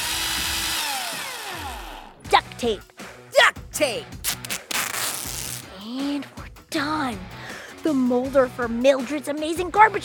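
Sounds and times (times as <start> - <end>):
power drill whirring: 0.0 - 2.2
speech: 2.6 - 2.9, 3.8 - 4.2, 5.9 - 10.0.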